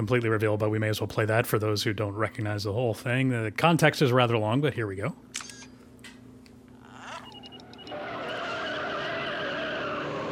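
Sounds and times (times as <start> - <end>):
speech: 0.0 - 5.6
remote-control car tires speeding up: 7.0 - 10.3.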